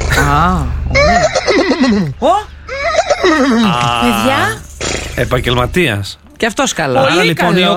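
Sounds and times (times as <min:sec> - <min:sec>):
person imitating a horse neigh: 0:00.1 - 0:02.1, 0:02.7 - 0:04.4
speech: 0:00.3 - 0:02.5, 0:03.2 - 0:07.7.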